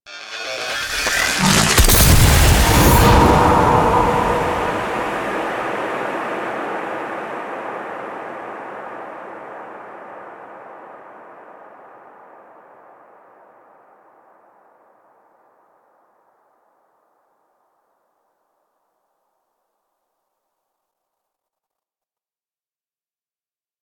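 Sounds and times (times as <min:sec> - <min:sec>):
cinematic end blast: 0:00.3 - 0:06.8.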